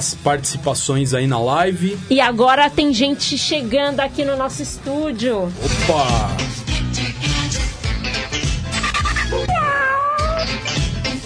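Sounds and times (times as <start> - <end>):
speech: 0.0 - 6.6
loud busy music: 0.0 - 11.2
cat meowing: 9.3 - 10.6.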